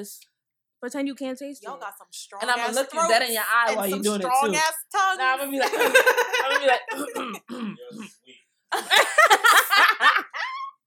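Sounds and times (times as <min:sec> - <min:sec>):
speech: 0:00.0 - 0:10.4
laughter: 0:05.4 - 0:07.4, 0:08.7 - 0:10.8
person imitating a stifled cough through closed lips: 0:06.9 - 0:08.1.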